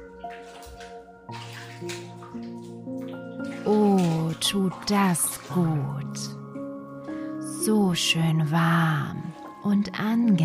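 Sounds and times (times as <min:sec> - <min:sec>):
bathwater sloshing and splashing in a tub: 0:00.0 - 0:10.4
speech: 0:03.7 - 0:06.4, 0:07.6 - 0:10.4.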